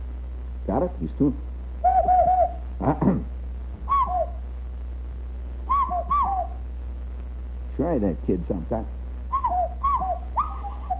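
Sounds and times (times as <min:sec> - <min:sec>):
steady low hum: 0:00.0 - 0:10.9
speech: 0:00.7 - 0:01.5, 0:02.8 - 0:03.3, 0:07.8 - 0:09.0
hollow hand whistle imitating a cuckoo call: 0:01.8 - 0:02.6, 0:03.9 - 0:04.4, 0:05.7 - 0:06.6, 0:09.3 - 0:10.9.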